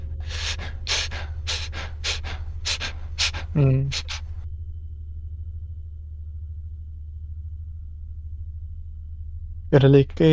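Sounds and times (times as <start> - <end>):
person imitating the panting breaths of a woman with a fever: 0.1 - 4.3
speech: 3.6 - 4.1, 9.7 - 10.3.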